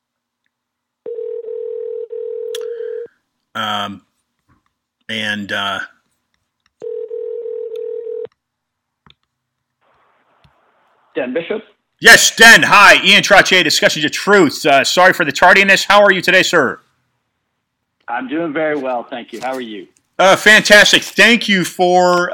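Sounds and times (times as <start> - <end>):
steady electronic phone line tone: 1.0 - 3.1, 6.8 - 8.3
speech: 3.6 - 4.1, 5.1 - 6.0, 11.2 - 16.8, 18.1 - 22.3.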